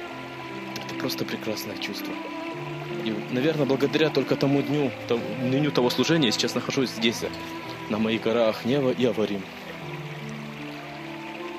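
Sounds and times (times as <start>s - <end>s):
stream rushing at the foothills of mountains: 0.0s - 11.5s
speech: 1.0s - 10.0s.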